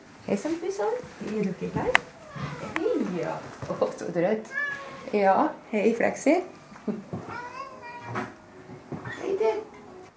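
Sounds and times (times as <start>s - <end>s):
faint noise: 0.0s - 10.1s
speech: 0.2s - 7.5s
cat meowing in a barrack of cats waiting to be adopted: 2.0s - 3.2s, 4.5s - 5.1s, 7.2s - 8.3s.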